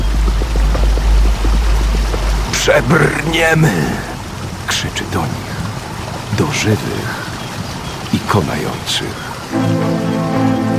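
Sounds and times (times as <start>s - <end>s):
deep low rumble of river: 0.0s - 4.6s
turbulent river water churning and seething: 0.0s - 10.7s
speech: 2.6s - 4.1s, 4.7s - 5.5s, 6.4s - 7.3s, 8.1s - 10.0s.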